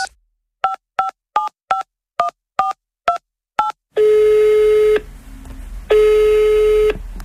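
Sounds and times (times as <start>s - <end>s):
telephone ringback tone: 3.6s - 5.0s, 5.9s - 7.0s.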